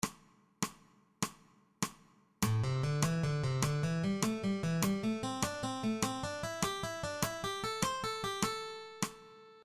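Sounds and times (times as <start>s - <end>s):
ascending eighth-note triplet motif with alternate plucking: 2.4s - 9.5s.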